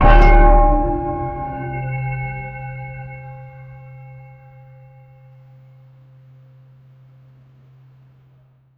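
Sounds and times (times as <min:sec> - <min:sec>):
deep bell strikes: 0:00.0 - 0:06.6.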